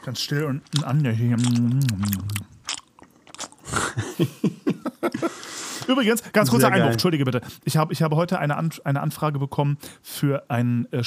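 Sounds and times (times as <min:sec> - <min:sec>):
speech: 0:00.0 - 0:02.5, 0:04.2 - 0:11.0
wet lip smacking while chewing gum: 0:00.3 - 0:04.0
laughter: 0:03.7 - 0:05.4.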